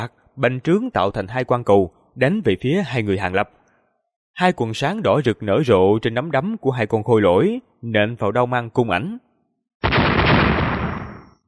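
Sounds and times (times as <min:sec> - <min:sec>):
speech: 0:00.0 - 0:03.6, 0:04.4 - 0:09.9
loud explosive blast: 0:09.8 - 0:11.4.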